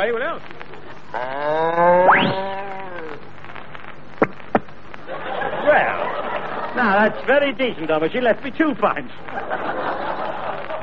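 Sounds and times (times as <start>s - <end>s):
speech: 0.0s - 2.5s, 6.8s - 9.4s
steady hiss: 0.0s - 10.8s
voice imitating a cow mooing: 1.1s - 3.2s
laughter: 5.1s - 7.6s, 9.3s - 10.8s.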